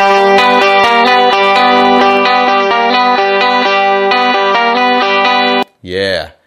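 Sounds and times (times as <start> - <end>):
jangly stringed instrument strumming chords through vintage EQ effect: 0.0 - 5.6.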